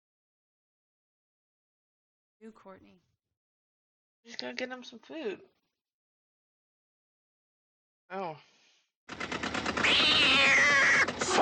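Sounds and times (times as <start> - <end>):
speech: 2.4 - 3.1, 4.2 - 5.6, 8.1 - 9.3
cat meowing with a rattling trill: 9.8 - 11.4.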